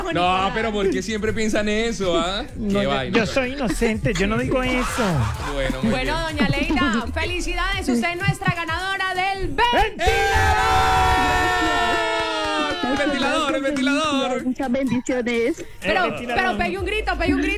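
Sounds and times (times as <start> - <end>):
laughter: 0.0 - 17.5
speech: 0.1 - 11.6, 12.9 - 17.5
woman talking excitedly: 5.8 - 10.3, 12.6 - 17.5
woman screaming in celebration: 10.0 - 13.4.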